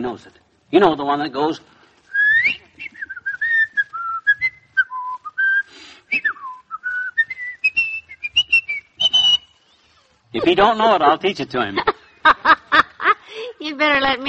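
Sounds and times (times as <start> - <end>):
speech: 0.0 - 1.8, 10.3 - 12.6, 13.8 - 14.2
person whistling a bouncy jaunty tune: 2.1 - 9.5
laughter: 11.6 - 13.3.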